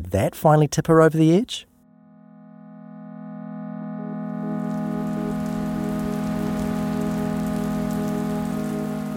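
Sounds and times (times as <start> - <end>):
speech: 0.1 - 1.7
low droning hum: 4.3 - 9.1
steady rain on a hard surface on a rainy night: 4.4 - 9.1.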